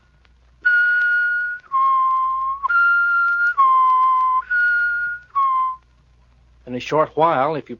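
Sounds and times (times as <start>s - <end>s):
person whistling two alternating pitches with tongue moving: 0.6s - 5.8s
speech: 6.7s - 7.7s.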